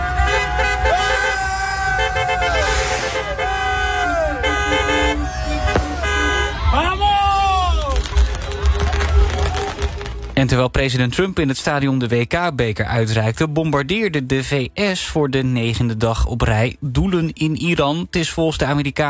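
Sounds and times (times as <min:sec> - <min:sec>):
many car horns honking in celebration on a busy street: 0:00.0 - 0:10.3
faint voices and shouting of celebrating fans: 0:00.0 - 0:10.4
traffic rumble: 0:00.0 - 0:18.1
speech: 0:10.4 - 0:19.0.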